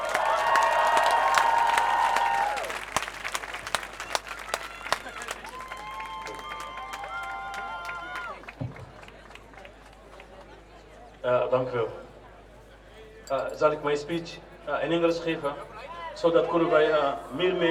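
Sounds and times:
crowd clapping at an anti-racism and anti-fascism demonstration: 0.0s - 10.8s
speech: 11.5s - 12.0s, 13.3s - 17.7s.

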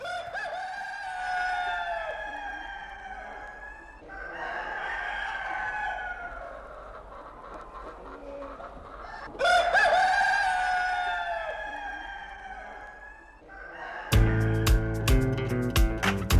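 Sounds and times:
rooster crowing: 0.0s - 6.6s, 9.1s - 16.2s.

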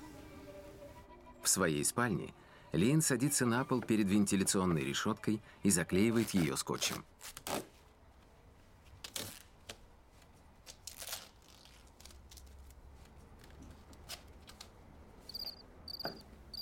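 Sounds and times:
speech: 1.5s - 7.4s
cricket chirping: 15.3s - 16.6s.

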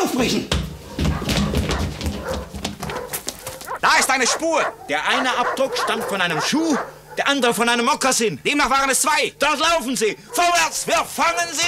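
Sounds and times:
speech: 0.2s - 0.6s, 4.1s - 11.6s
dogs barking and raging: 0.8s - 7.8s, 9.7s - 11.6s.

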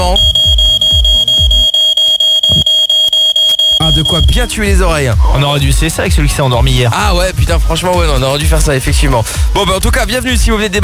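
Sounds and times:
smoke alarm blaring a high-pitched electronic tone: 0.0s - 4.6s
speech: 4.0s - 10.8s.

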